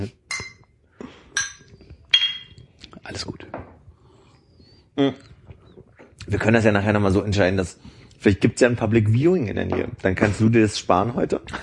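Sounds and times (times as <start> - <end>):
glasses clinking in a toast: 0.3 - 2.7
speech: 3.1 - 3.4, 5.0 - 5.3, 6.3 - 11.6.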